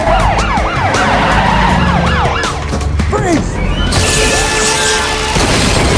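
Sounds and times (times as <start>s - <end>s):
police siren yelping: 0.0s - 4.0s
crackling crashing debris: 5.1s - 5.9s.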